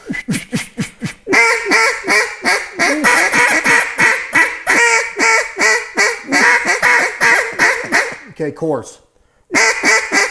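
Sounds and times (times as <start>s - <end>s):
mallard hen quacks blown on a duck call: 1.3s - 8.4s, 9.5s - 10.2s
speech: 8.6s - 9.6s.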